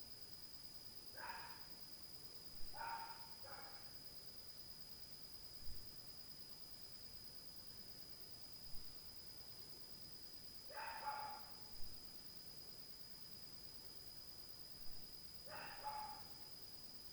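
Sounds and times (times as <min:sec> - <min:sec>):
dog barking faintly at night: 0:01.2 - 0:01.7, 0:02.7 - 0:04.0, 0:10.7 - 0:11.8, 0:15.5 - 0:16.5.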